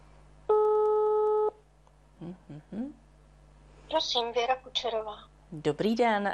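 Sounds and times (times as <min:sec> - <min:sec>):
telephone ringback tone: 0:00.5 - 0:01.5
speech: 0:02.3 - 0:03.0, 0:03.9 - 0:06.3.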